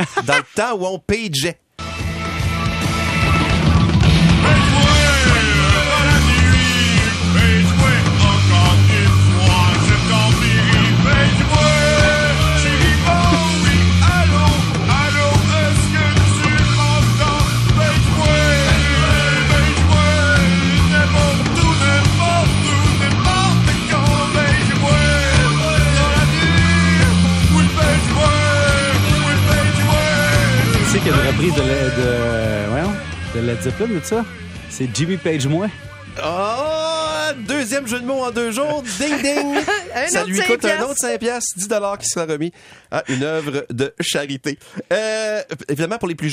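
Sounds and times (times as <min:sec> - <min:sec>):
laughter: 0:00.0 - 0:00.6, 0:11.7 - 0:15.6, 0:27.8 - 0:33.0, 0:36.2 - 0:41.0, 0:42.9 - 0:43.8, 0:44.5 - 0:45.6
speech: 0:00.0 - 0:01.6, 0:31.0 - 0:36.6, 0:37.4 - 0:46.3
French-language rock cover song: 0:01.8 - 0:41.0.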